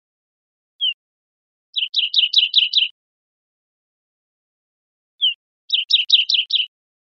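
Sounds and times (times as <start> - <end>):
olive warbler chipping notes in Costa Rica: 1.8 - 3.0, 5.2 - 6.7.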